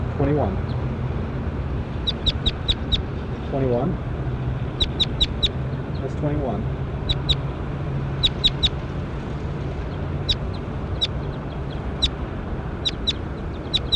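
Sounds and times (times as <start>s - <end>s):
steady low hum: 0.0s - 13.9s
speech: 0.2s - 0.8s, 3.5s - 4.1s, 6.0s - 6.8s
bird calling in quick chirps: 2.0s - 3.1s, 4.8s - 6.2s, 7.0s - 7.5s, 8.2s - 8.8s, 9.8s - 12.2s, 12.8s - 13.9s.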